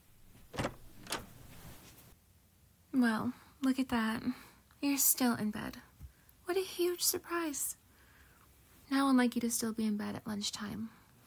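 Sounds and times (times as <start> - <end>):
door opening as someone enters room: 0.0 - 1.9
faint shuffling: 0.0 - 2.2
speech: 3.0 - 5.9, 6.5 - 7.8, 8.9 - 11.0.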